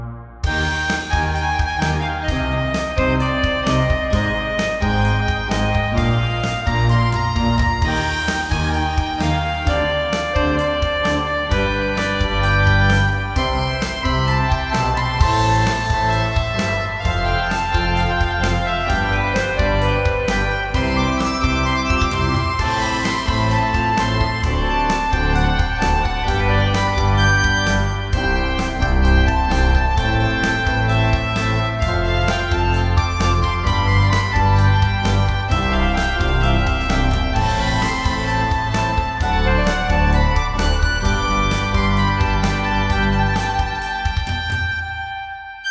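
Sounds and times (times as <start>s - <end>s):
drums: 0.4s - 45.5s
Organteq organ: 0.5s - 45.1s.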